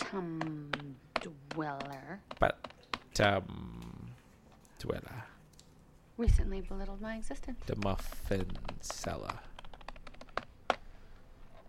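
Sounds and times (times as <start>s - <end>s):
typing on a computer keyboard: 0.0s - 3.3s, 7.3s - 10.9s
speech: 0.1s - 3.6s, 4.8s - 5.3s, 6.2s - 9.5s.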